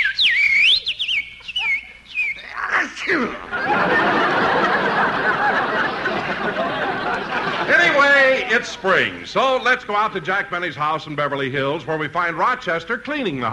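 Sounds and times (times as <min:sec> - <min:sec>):
whistled imitation of a little songbird: 0:00.0 - 0:03.6
laughter: 0:00.8 - 0:10.2
loud steady broadband rush: 0:01.6 - 0:12.6
speech: 0:03.1 - 0:04.1, 0:07.9 - 0:13.5.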